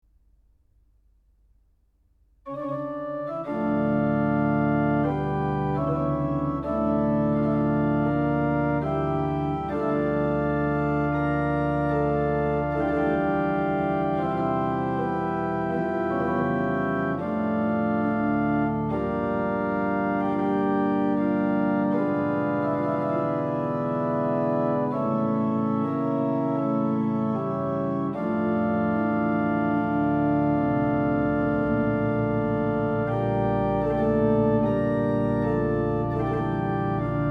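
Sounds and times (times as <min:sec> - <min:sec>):
pipe organ foundation stops: 0:02.5 - 0:37.2.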